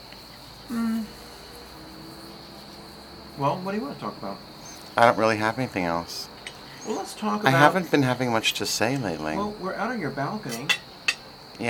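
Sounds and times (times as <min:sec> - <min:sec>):
crickets and cicadas chirping outdoors on a balcony: 0:00.0 - 0:11.6
person humming: 0:00.7 - 0:02.9
speech: 0:03.4 - 0:10.9.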